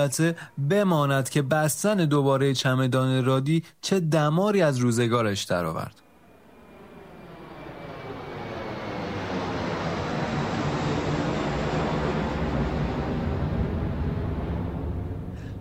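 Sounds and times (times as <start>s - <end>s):
speech: 0.0s - 6.0s
airplane engine roar during takeoff: 6.0s - 15.6s.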